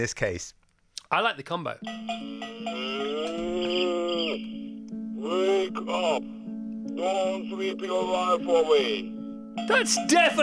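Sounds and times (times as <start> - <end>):
speech: 0.0 - 6.4, 7.0 - 10.4
person imitating a cow mooing: 2.4 - 4.5.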